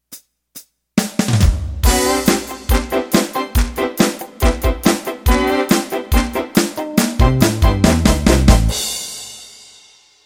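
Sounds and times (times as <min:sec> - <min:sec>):
country boogie music: 0:01.3 - 0:08.9.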